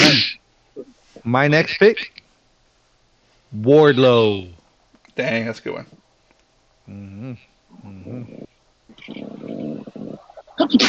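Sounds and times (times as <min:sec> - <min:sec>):
person sneezing: 0:00.0 - 0:00.4, 0:10.6 - 0:10.8
speech: 0:01.3 - 0:02.2, 0:03.5 - 0:04.6, 0:05.2 - 0:06.0, 0:06.9 - 0:10.8
murmured talking: 0:06.9 - 0:08.5
breathy noisy sound: 0:06.9 - 0:10.8.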